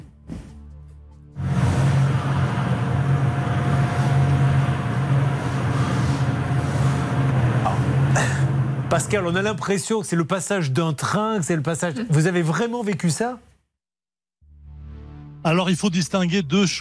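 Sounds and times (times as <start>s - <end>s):
mechanical ventilation system (VMC) rumble in a home: 1.4s - 10.7s
speech: 8.9s - 13.5s, 15.4s - 16.7s.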